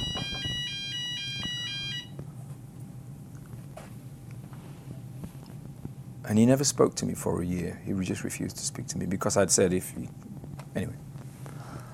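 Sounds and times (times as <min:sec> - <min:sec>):
fire alarm blaring in high-pitched electronic pulses: 0:00.0 - 0:02.2
speech: 0:06.3 - 0:11.0.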